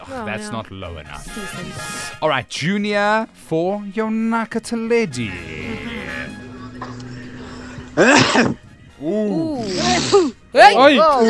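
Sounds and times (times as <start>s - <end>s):
speech: 0.1s - 5.6s, 8.0s - 11.2s
person sneezing: 8.0s - 8.6s, 9.6s - 10.4s.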